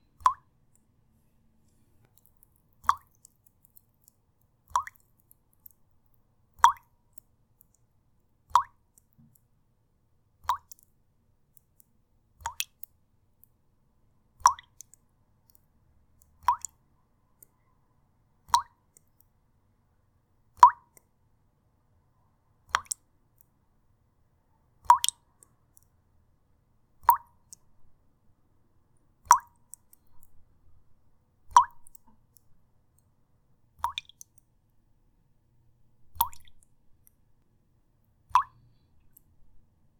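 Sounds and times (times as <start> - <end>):
water drops on a tea bowl: 0.2 - 0.5, 2.2 - 3.4, 4.7 - 5.8, 6.6 - 6.9, 8.4 - 9.4, 12.4 - 12.9, 14.4 - 15.0, 16.2 - 16.8, 18.4 - 18.8, 20.5 - 21.1, 22.6 - 23.0, 24.8 - 25.3, 27.0 - 27.6, 29.2 - 30.3, 31.5 - 32.4, 33.8 - 34.4, 36.1 - 36.7, 38.3 - 38.6.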